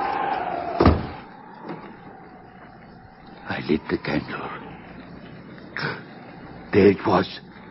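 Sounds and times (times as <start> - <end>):
steady windy hiss: 0.0 - 7.6
door slamming shut with a solid thud: 0.7 - 1.8
speech: 3.7 - 4.6, 6.7 - 7.5.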